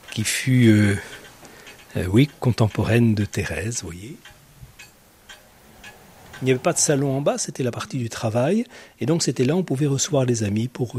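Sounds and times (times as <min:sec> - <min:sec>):
old clock ticking: 0:00.0 - 0:07.2
low hum: 0:00.0 - 0:10.9
speech: 0:00.2 - 0:01.2, 0:02.0 - 0:04.4, 0:06.4 - 0:10.9.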